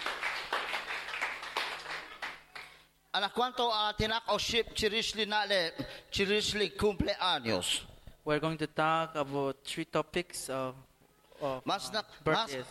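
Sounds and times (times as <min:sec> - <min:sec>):
audience applause: 0:00.0 - 0:02.8
speech: 0:03.2 - 0:12.6.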